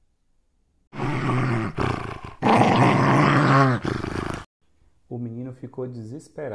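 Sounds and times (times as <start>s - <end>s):
wolf growling and snarling: 0.9s - 4.5s
speech: 5.2s - 6.5s.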